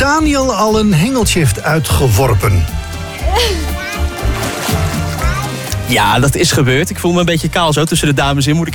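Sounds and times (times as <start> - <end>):
speech: 0.1 - 2.8, 5.9 - 8.7
water sloshing and splashing as women swim: 1.2 - 6.7
voices calling out, including a child's: 2.9 - 5.9.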